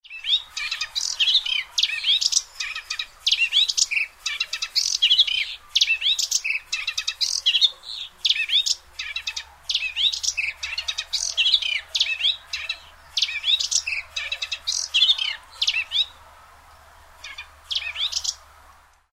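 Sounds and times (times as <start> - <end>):
subalpine warbler singing: 0.0 - 18.6.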